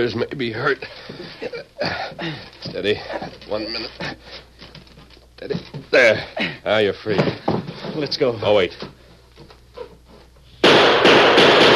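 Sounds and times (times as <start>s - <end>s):
speech: 0.0s - 4.5s, 5.4s - 9.0s
gunshot fired through a window at a house: 10.6s - 11.7s.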